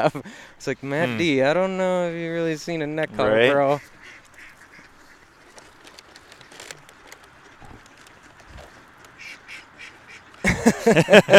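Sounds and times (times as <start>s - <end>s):
speech: 0.0s - 4.0s, 10.6s - 11.3s
mallard ducks quacking: 3.0s - 11.0s
laughter: 10.4s - 11.3s.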